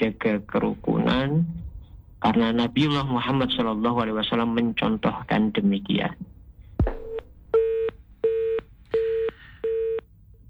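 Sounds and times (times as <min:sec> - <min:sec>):
speech: 0:00.2 - 0:07.0
telephone busy tone after a phone call is cut off: 0:07.6 - 0:10.0.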